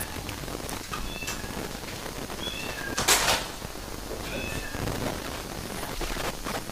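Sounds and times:
steady hiss: 0.0s - 6.7s
cat meowing: 1.0s - 1.7s, 2.4s - 3.0s, 4.2s - 4.9s.

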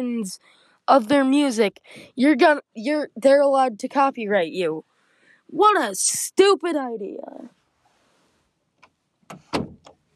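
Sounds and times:
speech: 0.0s - 4.9s, 5.5s - 7.6s
door opening: 9.3s - 10.0s.

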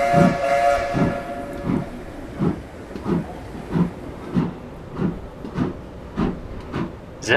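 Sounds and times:
steam train whistle: 0.0s - 2.1s
steam train steam hissing: 0.0s - 7.3s
speech: 0.1s - 1.0s.

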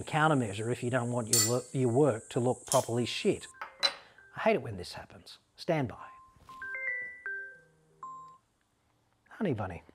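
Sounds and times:
speech: 0.0s - 3.6s, 4.4s - 6.1s, 9.4s - 9.9s
mobile phone ringtone melody of bright electronic tones: 6.2s - 8.5s.

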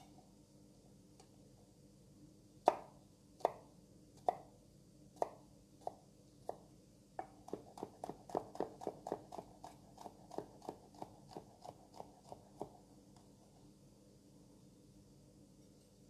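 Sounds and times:
knife finely chopping a garlic clove: 2.7s - 4.5s, 7.2s - 13.3s.

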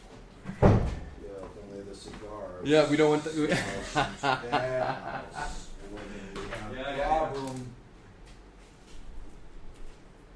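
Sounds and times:
door swinging shut with a solid thump: 0.4s - 1.2s
speech: 2.0s - 5.6s
laughter: 3.1s - 6.4s.

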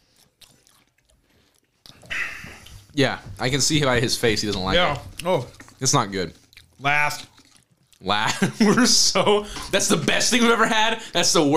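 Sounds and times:
crunching and chewing a jalapeno potato chip: 0.0s - 3.0s, 4.3s - 8.2s
speech: 3.0s - 7.3s, 8.0s - 11.5s
laughter: 8.2s - 11.0s.

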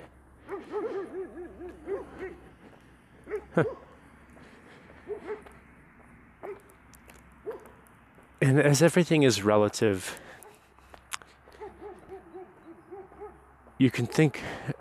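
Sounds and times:
farm dogs giving yelps and whining barks: 0.4s - 5.7s, 6.4s - 6.8s, 7.4s - 7.9s, 10.4s - 13.6s
speech: 3.6s - 3.8s, 8.4s - 10.3s, 13.8s - 14.7s.

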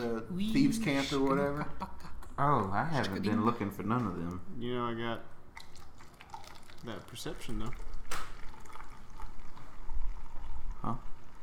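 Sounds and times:
speech: 0.2s - 1.8s, 2.4s - 5.4s, 6.8s - 7.9s, 10.8s - 11.1s
drink pouring into a glass: 5.5s - 11.4s.

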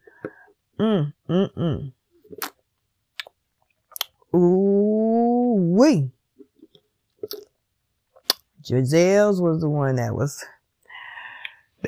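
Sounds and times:
short hummed vocal sounds: 0.8s - 2.0s, 4.3s - 5.7s
speech: 0.8s - 2.0s, 8.7s - 10.6s
wet mouth clicks: 2.3s - 4.2s, 6.7s - 7.5s, 8.2s - 8.5s.

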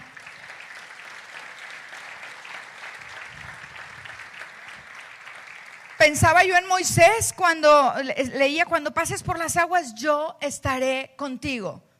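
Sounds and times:
large crowd applauding in a room: 0.0s - 6.7s
speech: 6.1s - 11.9s.

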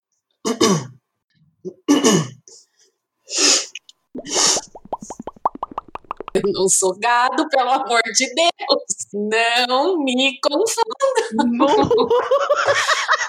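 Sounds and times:
person clearing throat with harsh raspy bursts: 0.5s - 1.0s, 1.6s - 2.6s
speech: 6.4s - 12.9s
laughter: 11.0s - 13.2s.

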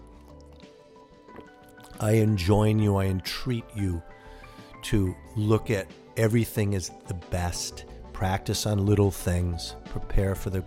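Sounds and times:
faint liquid sloshing: 0.0s - 2.0s
person drinking water with soft wet gulps and swallows: 0.0s - 2.0s
speech: 2.0s - 4.2s, 4.8s - 10.6s.

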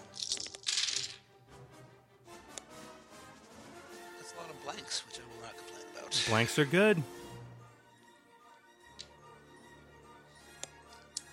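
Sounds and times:
setback dice and purple dice rolling across a table: 0.0s - 1.2s
speech: 4.8s - 7.2s.

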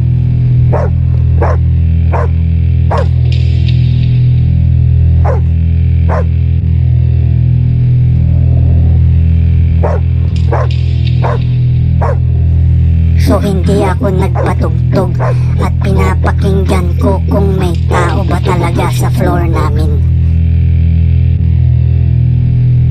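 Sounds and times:
steady low hum: 0.0s - 22.9s
dog barking at the door: 0.7s - 3.2s, 5.2s - 5.5s, 6.1s - 6.4s, 9.8s - 12.3s, 14.2s - 15.6s
speech: 13.4s - 20.0s.

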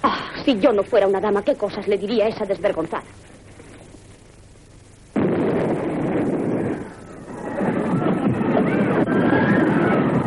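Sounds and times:
speech: 0.5s - 3.3s
northern artillery shells exploding over a city: 5.1s - 10.2s.

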